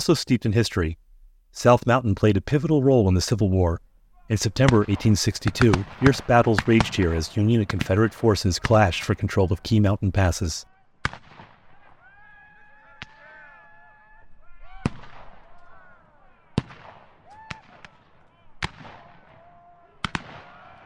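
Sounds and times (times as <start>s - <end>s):
speech: 0.0s - 11.2s
cannon and musket fire echoing: 4.6s - 9.0s, 11.0s - 12.0s, 14.8s - 15.5s, 16.5s - 19.4s, 20.0s - 20.6s.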